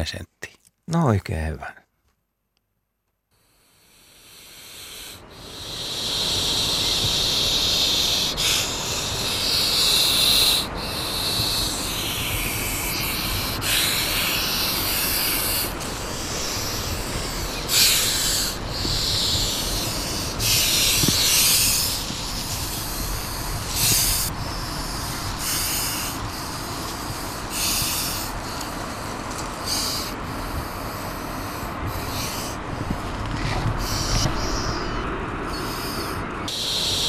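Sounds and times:
speech: 0.0s - 1.8s
European adder hissing: 3.3s - 33.0s, 33.8s - 37.0s.

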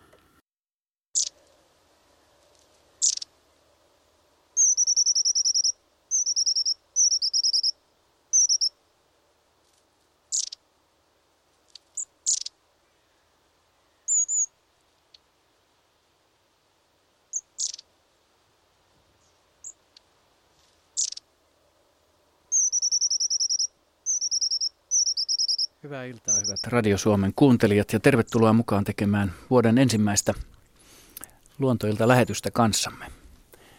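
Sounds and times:
long-tailed tit buzzy trills: 1.2s - 1.4s, 3.0s - 3.3s, 4.6s - 8.8s, 10.3s - 10.6s, 11.7s - 13.2s, 13.9s - 14.6s, 17.3s - 17.9s, 20.9s - 21.3s, 22.5s - 26.9s
long-tailed tit calls: 1.2s - 1.5s, 2.5s - 3.3s, 4.6s - 8.7s, 10.3s - 10.6s, 11.7s - 15.2s, 17.3s - 17.9s, 21.0s - 21.3s, 22.5s - 27.0s
speech: 25.8s - 30.5s, 31.6s - 33.2s.

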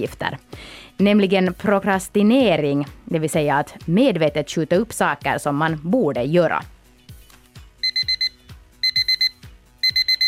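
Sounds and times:
speech: 0.0s - 6.8s
alarm clock beeping: 7.8s - 10.2s.

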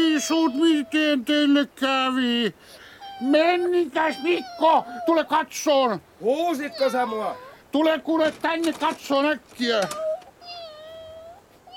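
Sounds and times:
kittens meowing: 0.0s - 1.6s, 2.8s - 5.6s, 6.3s - 8.0s, 9.6s - 11.7s
speech: 0.2s - 10.1s.

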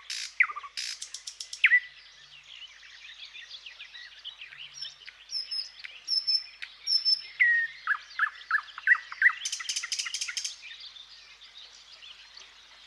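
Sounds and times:
thrush nightingale song: 1.6s - 1.9s, 4.8s - 10.6s.

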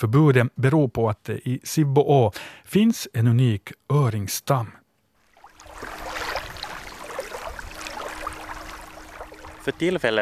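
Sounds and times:
speech: 0.0s - 4.8s, 9.6s - 10.2s
small waves sloshing and splashing: 5.2s - 10.2s
motorboat engine droning: 5.6s - 10.2s.

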